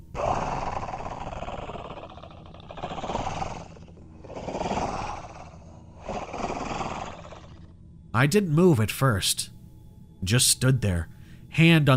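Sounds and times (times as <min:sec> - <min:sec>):
creature breathing heavily behind a shut steel door: 0:00.0 - 0:07.8
speech: 0:08.2 - 0:09.6, 0:10.2 - 0:11.9.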